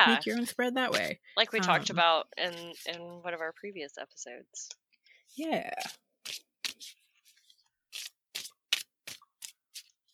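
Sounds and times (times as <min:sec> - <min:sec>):
speech: 0:00.0 - 0:07.0
tarot cards being shuffled: 0:02.4 - 0:03.1, 0:05.7 - 0:10.1.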